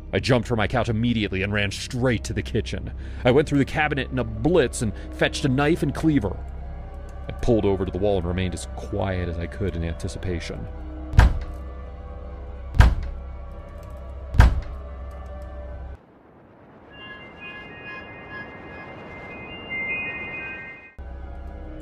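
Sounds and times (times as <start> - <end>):
speech: 0.1 - 6.6, 7.4 - 10.8
heavy booming bangs on a door by large powerful hands: 11.2 - 11.5, 12.8 - 13.1, 14.4 - 14.7.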